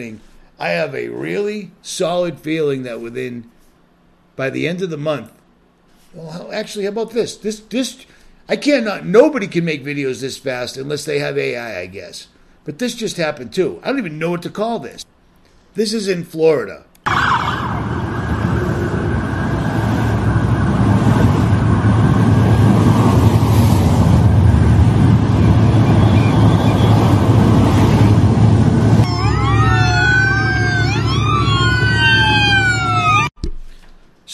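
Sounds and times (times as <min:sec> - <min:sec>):
speech: 0:00.0 - 0:03.6, 0:04.4 - 0:05.4, 0:06.1 - 0:15.1, 0:15.8 - 0:16.9
many police car sirens wailing in a convoy escorting an oil tanker: 0:17.0 - 0:23.5, 0:24.2 - 0:33.4
rumble of heavy traffic and engines: 0:17.1 - 0:33.3.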